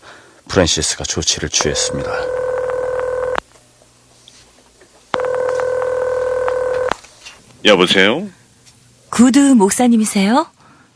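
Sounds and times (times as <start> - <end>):
speech: 0.6 - 2.5, 7.6 - 8.4, 9.1 - 10.9
electronic telephone dialing tones: 1.6 - 3.4, 5.2 - 7.0.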